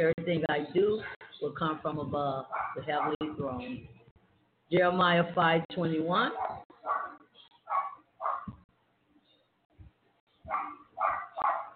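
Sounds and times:
speech: 0.0s - 4.0s, 4.7s - 6.7s
dogs barking: 2.5s - 3.3s, 6.3s - 8.6s, 10.4s - 11.7s.

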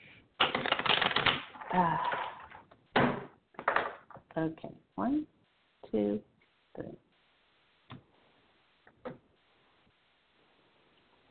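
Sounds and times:
deck of tarot cards being quickly shuffled: 0.4s - 2.6s
speech: 1.7s - 2.2s, 4.4s - 7.0s.

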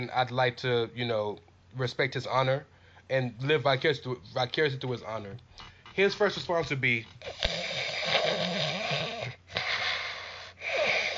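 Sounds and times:
speech: 0.0s - 8.2s
person faking loud snoring: 7.2s - 11.1s.

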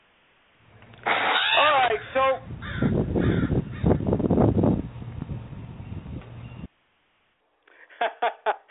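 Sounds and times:
crow cawing: 1.1s - 4.1s
laughter: 7.7s - 8.6s.

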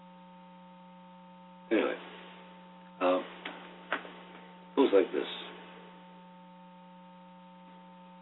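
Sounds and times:
low electrical hum: 0.0s - 8.1s
television-style static hiss: 1.6s - 8.1s
speech: 1.7s - 2.2s, 4.9s - 5.4s
louder static crackling bursts: 1.7s - 6.9s.

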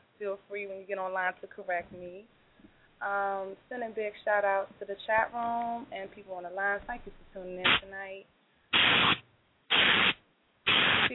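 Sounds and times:
speech: 0.2s - 2.4s, 3.0s - 9.2s
harsh static crackle on a phone line: 8.7s - 11.1s.

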